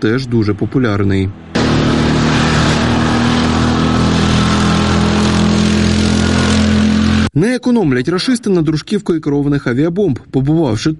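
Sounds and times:
speech: 0:00.0 - 0:01.8, 0:07.4 - 0:10.9
quad bike engine rumbling: 0:00.0 - 0:07.3.

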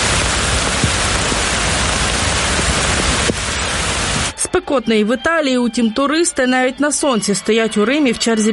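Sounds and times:
heavy rain: 0:00.0 - 0:04.4
speech: 0:04.6 - 0:08.5.

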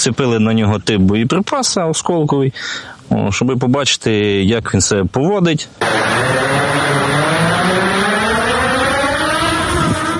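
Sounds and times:
speech: 0:00.0 - 0:07.9
drone motors whining while taking off and manoeuvring in flight: 0:05.8 - 0:10.1.

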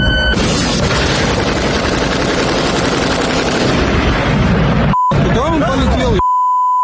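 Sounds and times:
steady electronic beeps: 0:00.0 - 0:00.4, 0:04.9 - 0:05.2, 0:06.1 - 0:06.8
rapid automatic fire from mobile air defense groups shooting at drones: 0:00.3 - 0:04.8.

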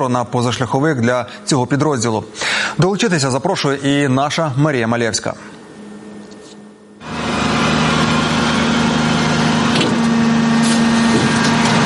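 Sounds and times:
speech: 0:00.0 - 0:05.6
CAESAR self-propelled howitzer engine running: 0:07.0 - 0:11.8.

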